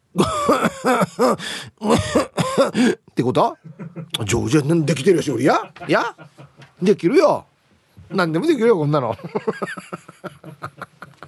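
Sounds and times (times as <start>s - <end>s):
harsh forced coughing: 0.2s - 3.0s
speech: 0.2s - 7.5s, 8.1s - 10.7s
throat-clearing rasps: 1.8s - 2.8s
laughter: 3.6s - 6.9s, 9.1s - 11.2s.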